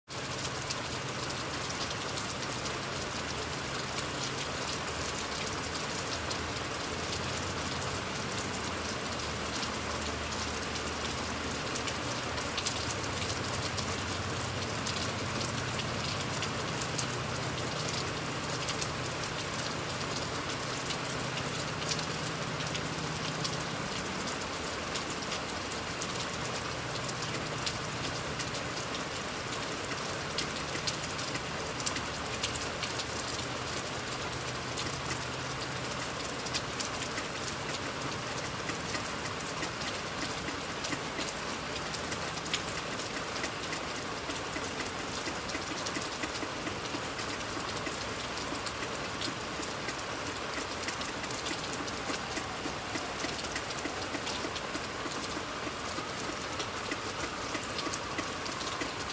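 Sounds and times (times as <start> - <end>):
rain: 0.0 - 59.1
police siren: 51.7 - 59.1.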